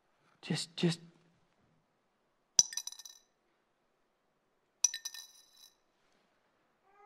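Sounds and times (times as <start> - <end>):
speech: 0.5 - 1.1
two small copper coins dropped in, clinking and bouncing: 2.6 - 3.2, 4.8 - 5.8.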